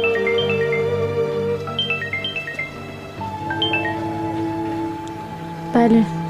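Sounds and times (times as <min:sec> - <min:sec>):
mobile phone ringtone with bright electronic melody: 0:00.0 - 0:04.2
speech: 0:05.8 - 0:06.2.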